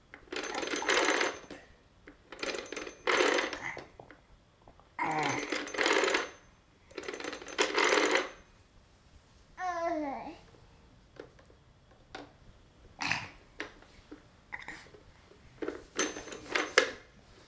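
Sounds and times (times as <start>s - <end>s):
toy telephone rattling and jingling as a small child plays with it: 0.2s - 1.6s, 2.3s - 3.7s, 5.1s - 8.4s, 15.9s - 17.0s.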